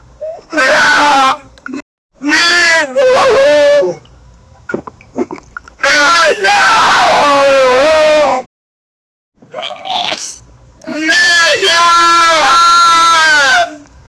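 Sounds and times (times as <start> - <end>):
man screaming and resisting: 0.5 - 1.5, 2.2 - 4.0, 5.8 - 8.5, 9.5 - 13.8.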